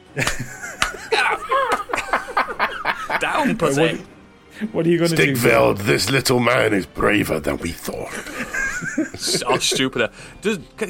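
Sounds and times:
snickering laughter: 0.1s - 3.6s, 8.1s - 9.8s
speech: 0.2s - 0.6s, 3.4s - 8.4s, 9.0s - 10.8s
sharp hand slaps: 0.2s - 2.0s.

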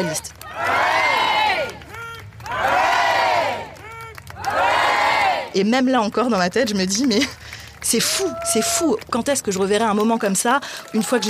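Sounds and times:
speech: 0.0s - 0.4s, 5.6s - 11.2s
large crowd cheering hip hip hurrah: 0.0s - 5.5s, 8.0s - 9.0s.

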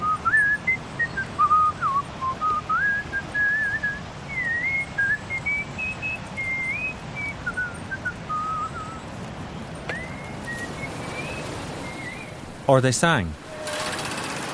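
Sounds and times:
man whistling a tune outdoors in a park: 0.0s - 9.1s, 9.9s - 12.3s
speech: 12.7s - 13.4s.

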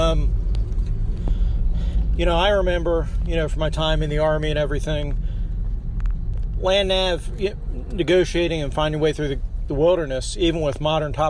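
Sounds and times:
car engine rumble while driving to work: 0.0s - 11.2s
road noise while driving to work: 0.0s - 11.2s
speech: 0.1s - 0.4s, 2.2s - 5.3s, 6.6s - 11.2s.

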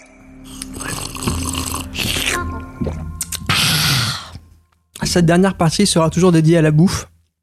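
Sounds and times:
person drinking water in gulps: 0.5s - 4.5s
speech: 5.2s - 7.1s.

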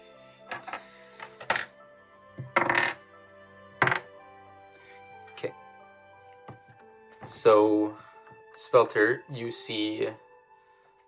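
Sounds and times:
dice clattering and tumbling across a hard surface: 2.4s - 3.0s, 3.8s - 4.0s
speech: 7.3s - 8.0s, 8.7s - 10.2s.

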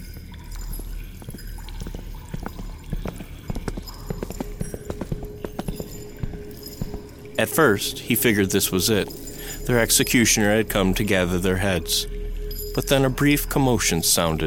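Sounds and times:
footsteps approaching outside a room: 0.0s - 9.7s
speech: 7.4s - 12.2s, 12.8s - 14.4s.

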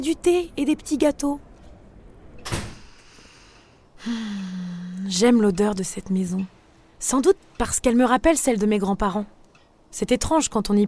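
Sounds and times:
speech: 0.0s - 1.5s, 4.0s - 10.8s
front door swinging open: 2.3s - 2.9s.

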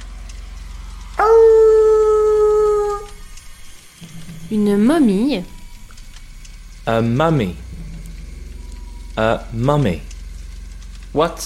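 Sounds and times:
werewolf howl sound effect: 1.2s - 3.3s
speech: 4.5s - 5.6s, 6.9s - 7.6s, 9.2s - 10.1s, 11.1s - 11.4s.

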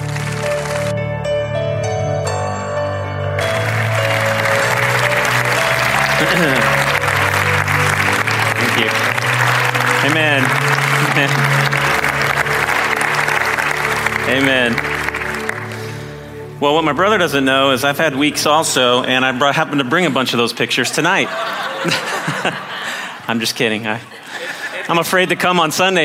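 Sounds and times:
large crowd clapping and cheering to welcome a pastor: 0.0s - 1.2s, 3.4s - 16.6s, 21.1s - 23.3s
warm instrumental music: 0.0s - 19.2s
laughter: 3.9s - 13.5s, 19.4s - 25.7s
speech: 6.4s - 6.8s, 8.8s - 9.0s, 10.0s - 11.8s, 14.3s - 14.9s, 16.6s - 22.7s, 23.3s - 24.2s, 24.9s - 26.0s.

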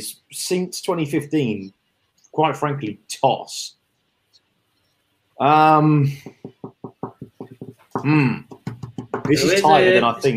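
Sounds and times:
speech: 0.0s - 1.8s, 2.4s - 3.8s, 5.4s - 6.6s, 8.0s - 8.5s, 9.3s - 10.3s
sharp knocking: 6.2s - 9.4s.

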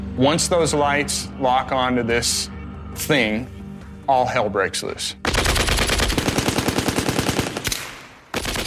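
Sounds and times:
speech: 0.2s - 5.4s
soldiers' machine-gun fire: 5.2s - 8.6s.

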